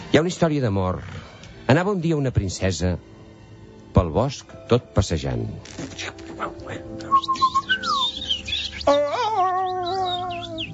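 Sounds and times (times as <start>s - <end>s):
speech: 0.1s - 3.2s, 3.9s - 7.4s, 8.9s - 9.2s
birds chirping and singing: 6.4s - 10.7s.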